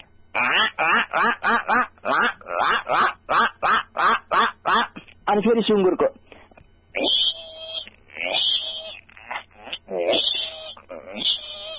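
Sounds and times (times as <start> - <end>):
duck quacking: 0.4 - 5.0, 7.0 - 11.7
speech: 5.4 - 6.1.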